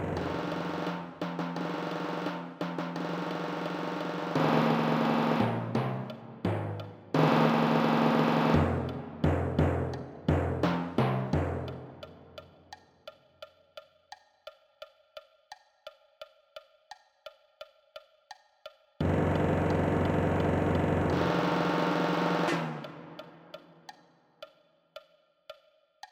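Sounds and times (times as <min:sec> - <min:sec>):
timpani: 0:00.1 - 0:12.0, 0:19.0 - 0:23.5.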